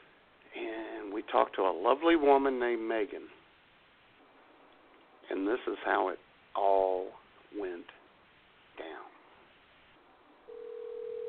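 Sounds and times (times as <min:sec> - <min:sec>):
faint hiss: 0:00.0 - 0:11.2
speech: 0:01.2 - 0:03.4, 0:05.3 - 0:08.0
telephone ringing tone on a call through a narrow phone line: 0:10.5 - 0:11.2.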